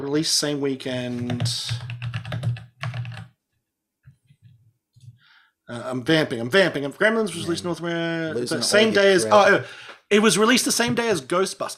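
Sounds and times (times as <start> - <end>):
speech: 0.0 - 2.4, 5.7 - 11.7
typing on a mechanical keyboard: 1.3 - 3.3.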